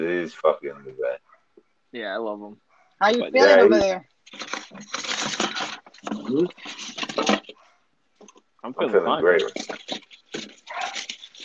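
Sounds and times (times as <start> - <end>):
speech: 0.0 - 1.0, 2.1 - 4.5, 6.3 - 6.6, 8.7 - 9.8
dogs barking indoors in a house: 10.7 - 11.1.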